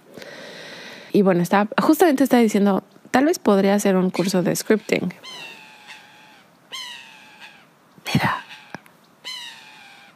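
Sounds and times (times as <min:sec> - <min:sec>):
speech: 0:01.2 - 0:05.5
bird giving loud harsh drawn-out calls: 0:04.2 - 0:10.1.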